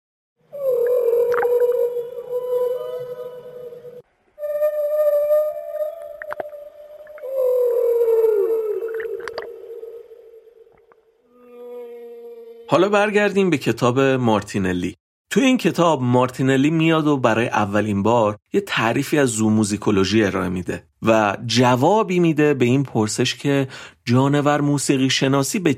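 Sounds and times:
whale song with moaning tonal calls: 0.4 - 12.8
whale high squeaks and clicks: 5.9 - 7.4, 8.8 - 9.6
speech: 12.7 - 25.7.

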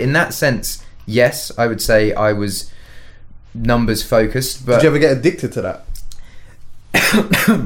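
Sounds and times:
speech: 0.0 - 2.8, 3.6 - 5.9, 6.9 - 7.6
harsh throaty coughs: 6.9 - 7.6.

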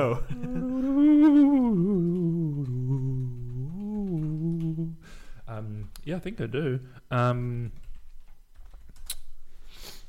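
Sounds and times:
speech: 0.0 - 0.5, 6.1 - 7.8
computer keyboard typing: 0.9 - 6.1, 7.4 - 9.3.

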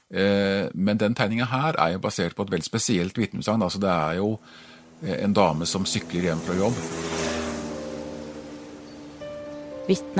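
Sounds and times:
speech: 0.1 - 7.3, 9.9 - 10.1
small moped engine revving while riding back and forth: 3.4 - 10.1.

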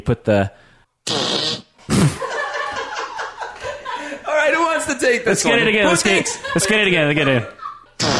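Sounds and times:
speech: 0.0 - 1.3, 4.8 - 8.1
fart sounds: 1.0 - 2.2, 8.0 - 8.1
laughter: 1.9 - 4.5, 5.4 - 8.1.

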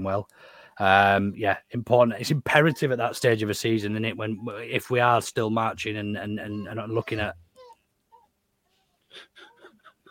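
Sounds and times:
speech: 0.0 - 7.4
dog whimpering with high-pitched whines and yelps: 6.4 - 10.0.

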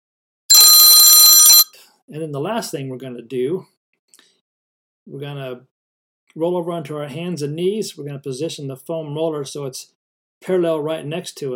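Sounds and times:
workout interval timer bell ringing: 0.5 - 1.6
speech: 2.1 - 3.8, 5.1 - 5.7, 6.3 - 11.5.

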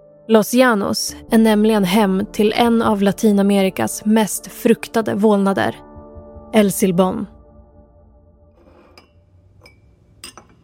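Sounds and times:
speech: 0.3 - 5.9, 6.5 - 7.4
bar glasses clinking as they're hung up: 8.8 - 10.6.

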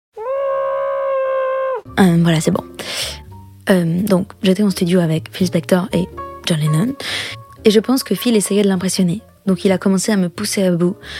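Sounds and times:
person screaming: 0.2 - 1.9
speech: 1.8 - 11.1.

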